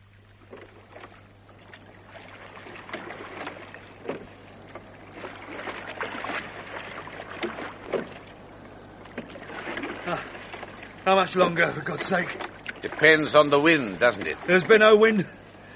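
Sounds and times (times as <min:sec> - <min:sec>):
paddles rowing a boat on windless water: 0:00.0 - 0:15.7
speech: 0:11.1 - 0:15.4.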